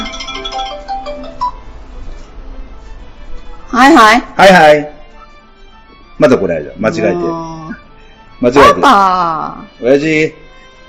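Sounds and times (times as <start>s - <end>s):
phone ringtone of an incoming call: 0.0s - 1.8s
speech: 3.7s - 5.0s, 6.2s - 7.8s, 8.4s - 10.4s.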